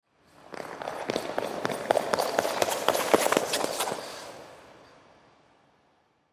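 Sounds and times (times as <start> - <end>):
ice skates passing by on a rink: 0.4 - 4.8.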